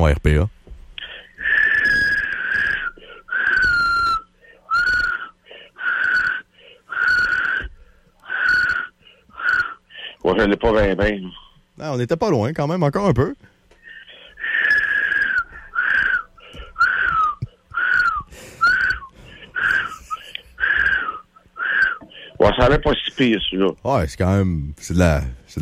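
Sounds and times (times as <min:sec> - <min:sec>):
speech: 0:00.0 - 0:00.6, 0:10.2 - 0:13.5, 0:22.4 - 0:25.6
person attempting to whistle: 0:01.0 - 0:10.2, 0:13.8 - 0:22.4.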